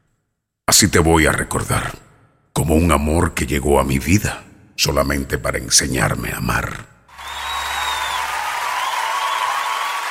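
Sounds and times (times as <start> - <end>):
speech: 0.8 - 2.0, 2.6 - 6.9
audience applause: 7.1 - 10.0.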